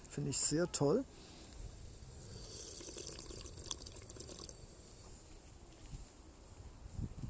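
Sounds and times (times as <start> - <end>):
speech: 0.2 - 1.3
water pouring from a water dispenser into a cup: 2.2 - 4.6.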